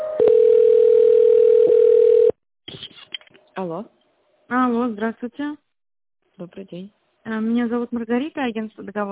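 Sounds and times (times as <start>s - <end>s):
electronic telephone line tones during a business call transfer: 0.2s - 2.4s
speech: 3.6s - 3.9s, 4.6s - 5.6s, 6.4s - 9.0s.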